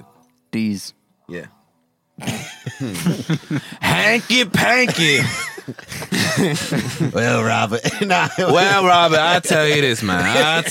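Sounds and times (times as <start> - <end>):
speech: 0.0 - 1.6, 2.2 - 10.6
person coughing: 2.2 - 2.9, 7.8 - 8.4
laughter: 2.2 - 10.6.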